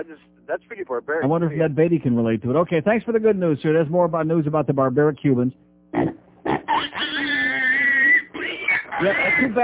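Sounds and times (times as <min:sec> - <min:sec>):
speech: 0:00.0 - 0:06.2, 0:09.0 - 0:09.6
pig grunting and high-pitched squealing: 0:06.0 - 0:09.6.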